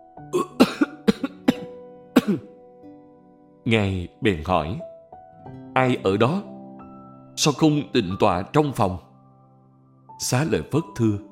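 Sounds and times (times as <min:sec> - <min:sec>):
raspy coughing: 0:00.4 - 0:02.5
speech: 0:03.7 - 0:04.9, 0:05.8 - 0:06.5, 0:07.4 - 0:09.1, 0:10.2 - 0:11.3.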